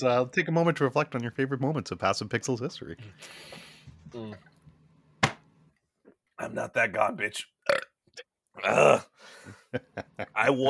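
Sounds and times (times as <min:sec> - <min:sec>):
speech: 0:00.0 - 0:04.5, 0:06.4 - 0:07.9, 0:08.6 - 0:10.6
throaty burp: 0:07.6 - 0:09.1
laughter: 0:09.5 - 0:10.6.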